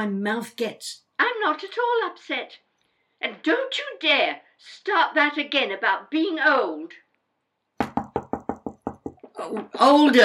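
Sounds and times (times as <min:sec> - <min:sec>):
speech: 0:00.0 - 0:02.6, 0:03.2 - 0:07.0, 0:09.4 - 0:10.2
knocking on a door: 0:07.8 - 0:09.4.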